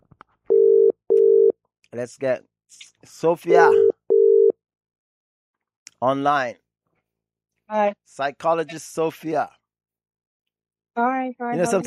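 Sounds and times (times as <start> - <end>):
telephone ringing tone on a call: 0.5 - 1.5, 3.6 - 4.6
speech: 2.0 - 3.9, 6.0 - 6.6, 7.7 - 9.6, 11.0 - 11.8.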